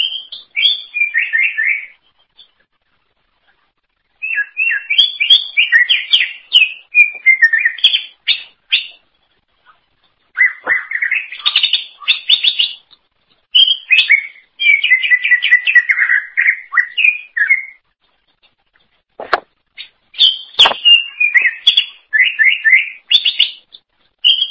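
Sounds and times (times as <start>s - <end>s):
greater green leafbird singing: 0.0s - 2.6s, 4.2s - 9.0s, 10.3s - 17.8s, 19.8s - 24.4s.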